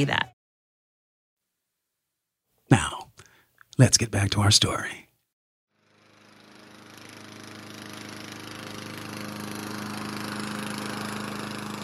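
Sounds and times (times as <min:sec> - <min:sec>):
speech: 0:00.0 - 0:00.3, 0:03.8 - 0:05.0
lawn mower engine running: 0:05.8 - 0:11.8.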